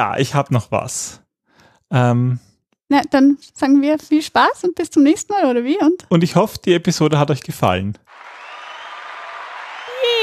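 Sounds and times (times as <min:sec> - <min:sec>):
speech: 0:00.0 - 0:01.2, 0:01.9 - 0:08.3
canned crowd cheering and applauding: 0:08.1 - 0:10.2.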